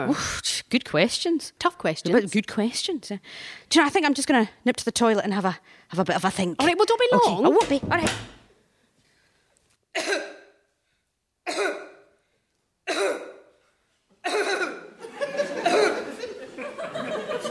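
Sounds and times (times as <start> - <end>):
speech: 0.0 - 8.4, 10.0 - 10.2
rough spluttering coughing and throat clearing: 9.9 - 10.6, 11.4 - 12.1, 12.8 - 13.5, 14.2 - 15.0, 15.6 - 16.2
laughter: 14.9 - 17.4.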